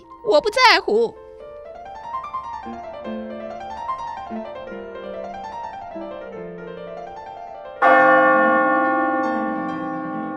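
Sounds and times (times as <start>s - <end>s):
speech: 0.2s - 1.2s
church bells pealing in cascading rounds: 7.8s - 10.3s.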